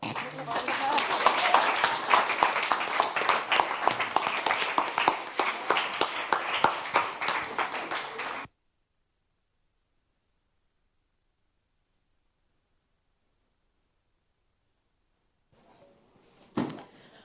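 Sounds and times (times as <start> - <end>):
crowd applauding for mentees: 0.0 - 8.5
murmur of voices: 0.0 - 8.5.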